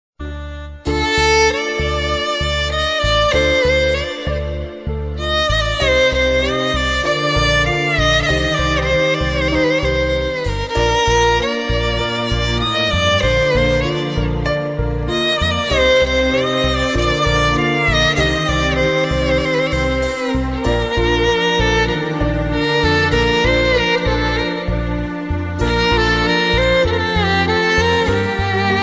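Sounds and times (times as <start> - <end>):
violin: 0.2 - 28.8.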